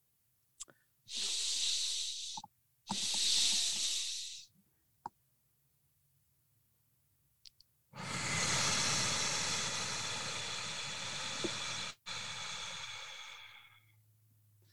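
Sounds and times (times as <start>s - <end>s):
quick breathy inhales through the nose: 0.6s - 4.5s, 8.0s - 14.0s
long steady mouth exhale: 1.1s - 4.5s, 8.0s - 13.9s.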